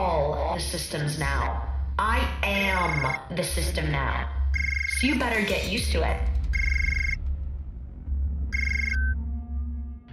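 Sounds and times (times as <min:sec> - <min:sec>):
speech: 0:00.7 - 0:06.6
steady low rumble: 0:01.1 - 0:10.1
phone ringing with a bright electronic trill: 0:02.8 - 0:03.2, 0:04.6 - 0:05.1, 0:06.5 - 0:07.2, 0:08.6 - 0:09.2.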